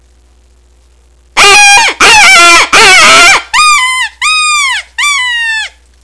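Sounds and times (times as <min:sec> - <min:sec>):
puppy whining: 0:01.4 - 0:05.8.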